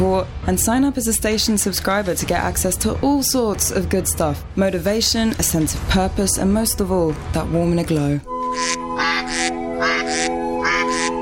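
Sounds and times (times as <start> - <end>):
speech: 0.0 - 9.1
ducks quacking: 8.5 - 11.2.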